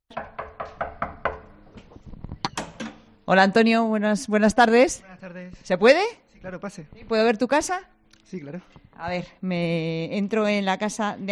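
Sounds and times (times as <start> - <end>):
knocking on an apartment door: 0.1 - 1.5
speech: 3.3 - 11.3.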